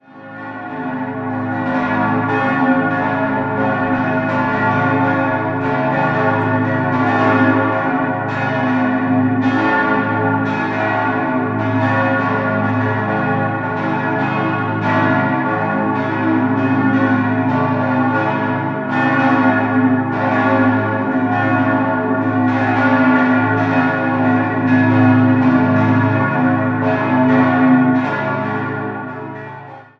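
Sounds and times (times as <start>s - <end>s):
parish church bells of St Elisabeth in Augsburg-Lechhausen ringing: 0.0s - 29.9s.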